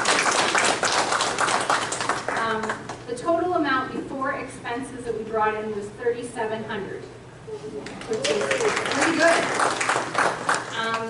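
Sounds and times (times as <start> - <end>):
church congregation clapping: 0.0 - 3.0, 7.8 - 11.0
speech: 3.2 - 9.8.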